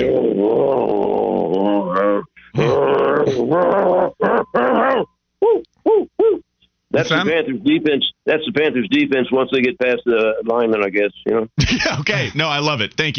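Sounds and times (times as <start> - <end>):
male caller on a phone imitating a dog growling: 0.0 - 6.4
speech: 7.0 - 13.1.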